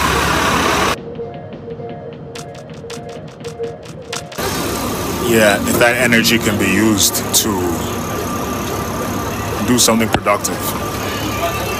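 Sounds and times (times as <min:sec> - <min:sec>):
bursts of rushing noise: 0:00.0 - 0:01.0, 0:03.8 - 0:11.7
bus engine idling while boarding a bus: 0:00.0 - 0:01.0, 0:04.2 - 0:11.7
sharp mechanical clicks: 0:02.4 - 0:04.5
speech: 0:05.3 - 0:08.1, 0:09.7 - 0:10.9.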